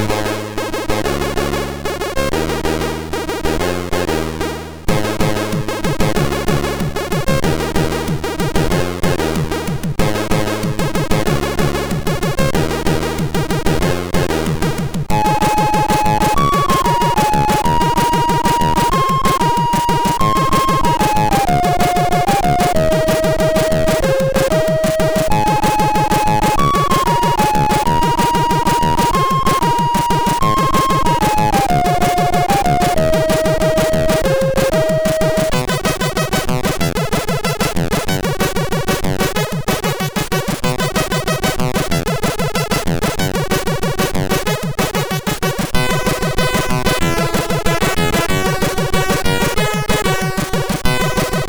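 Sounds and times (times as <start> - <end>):
MOS6581R2 SID chip music: 0.2 - 51.4.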